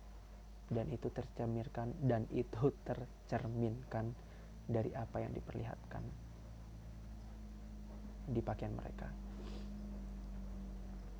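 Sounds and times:
speech: 0.7 - 6.2, 8.2 - 9.6
car engine rumbling past outside: 6.8 - 11.1.

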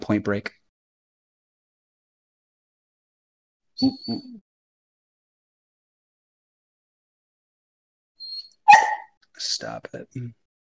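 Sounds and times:
speech: 0.1 - 0.6, 3.8 - 4.4, 8.7 - 10.4
dog barking: 8.7 - 9.2.

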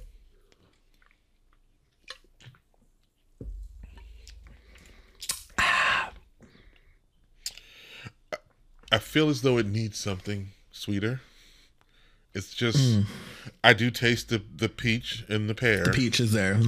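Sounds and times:
lip smacks: 0.5 - 2.7, 4.0 - 6.2
wet mouth clicks: 0.9 - 2.6, 5.2 - 6.2, 7.4 - 7.7
person sipping a drink: 3.9 - 7.8
speech: 9.0 - 11.3, 12.4 - 16.6.

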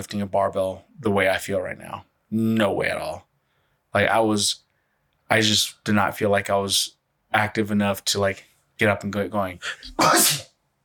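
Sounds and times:
speech: 0.0 - 3.3, 3.9 - 4.6, 5.3 - 10.5
sneeze: 9.9 - 10.6.

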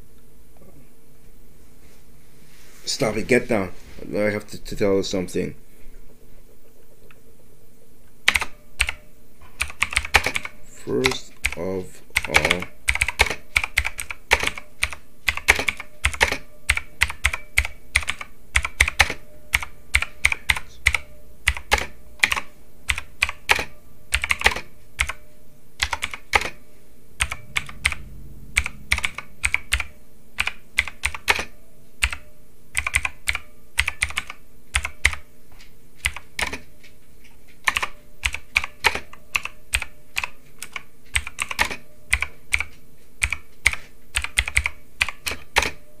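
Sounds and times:
speech: 2.9 - 5.6
typing on a computer keyboard: 8.2 - 25.2, 25.8 - 26.6, 27.2 - 35.2, 36.0 - 36.6, 37.6 - 45.8.

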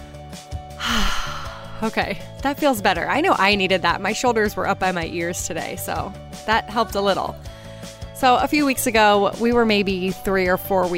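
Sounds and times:
person taking a big deep breath: 0.8 - 1.8, 7.4 - 8.0
speech: 1.8 - 7.5, 8.2 - 10.9.

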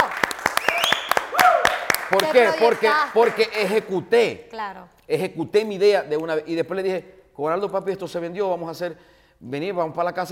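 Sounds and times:
cheering voices: 0.0 - 3.5
applause from a small group: 0.0 - 3.8
whistling: 0.5 - 1.3
speech: 2.1 - 10.3.

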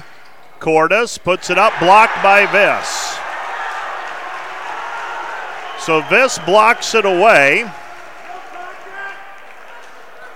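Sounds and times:
speech: 0.6 - 3.2, 5.8 - 7.8
basketball crowd in a gym shouting for a foul call: 1.4 - 7.9.

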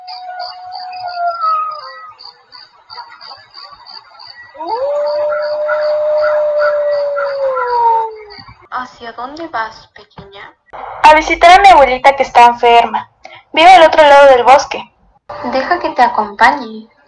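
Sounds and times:
wolf howling: 0.0 - 2.6, 4.3 - 8.5
faint high chirping: 0.0 - 8.7
speech: 9.0 - 17.0.

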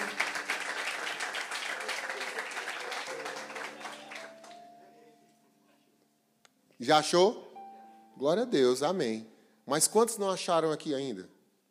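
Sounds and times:
crowd clapping loudly in a large room: 0.0 - 4.7
speech: 6.8 - 7.4, 8.2 - 11.4.

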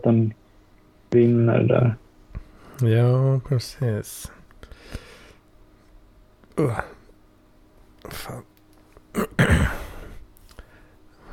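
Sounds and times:
speech: 0.0 - 0.4, 1.1 - 2.0, 2.8 - 5.0, 6.6 - 7.0, 8.1 - 8.5
quiet noise: 0.0 - 11.3
short throaty burp: 9.1 - 9.9.

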